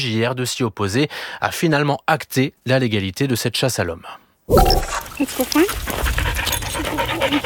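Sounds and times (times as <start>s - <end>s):
speech: 0.0s - 7.4s
retired Australian hero dog panting rapidly: 5.9s - 7.4s.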